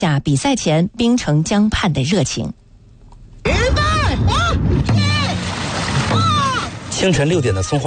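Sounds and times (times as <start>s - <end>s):
speech: 0.0s - 2.6s, 7.0s - 7.8s
dragon boat drumbeats: 3.5s - 7.4s
dragon boat crews' loud rhythmic shouts: 3.5s - 7.8s
dragon boat crews paddling through river water: 3.8s - 7.8s.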